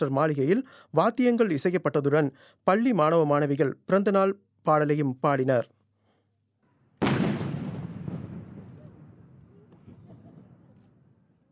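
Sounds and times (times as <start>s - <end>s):
speech: 0.0s - 5.8s
heavy artillery boom from a ceremonial gun salute: 7.0s - 10.9s.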